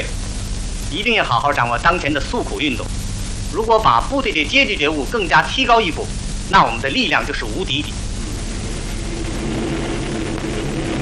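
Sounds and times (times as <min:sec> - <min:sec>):
speech: 0:00.9 - 0:08.0
military airplane engines droning overhead: 0:07.5 - 0:11.0.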